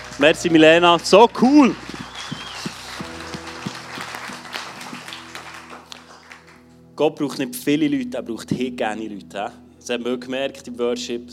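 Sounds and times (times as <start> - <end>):
audience applauding a worship band: 0.0 - 6.7
speech: 0.2 - 1.8, 7.0 - 11.3.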